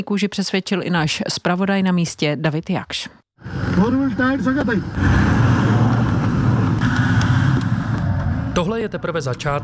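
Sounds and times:
speech: 0.0s - 5.7s, 8.6s - 9.6s
Toyota engine rumbling driving up a steep unpaved mountain road over sharp stones: 3.4s - 9.6s.

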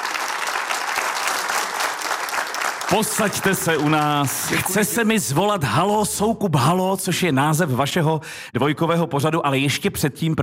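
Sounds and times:
large audience applauding: 0.0s - 5.0s
speech: 2.9s - 10.4s.

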